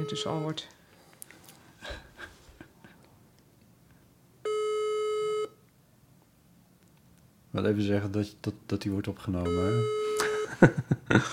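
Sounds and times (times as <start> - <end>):
telephone ringing tone on speakerphone: 0.0 - 0.7, 4.5 - 5.6, 9.5 - 10.5
speech: 0.0 - 0.8, 7.6 - 11.3
faint small noises: 0.0 - 10.5.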